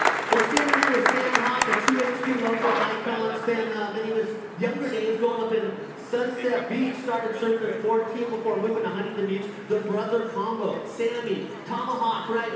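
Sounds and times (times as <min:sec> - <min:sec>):
crowd clapping: 0:00.0 - 0:03.8
busy background: 0:00.0 - 0:12.5
speech: 0:03.0 - 0:12.5.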